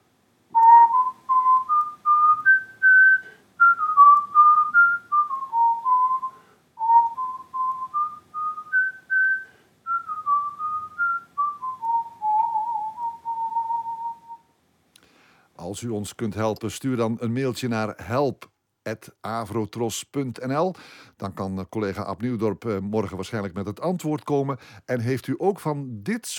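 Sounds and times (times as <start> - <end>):
person whistling a flowing melody: 0.6 - 14.4
speech: 15.7 - 26.3.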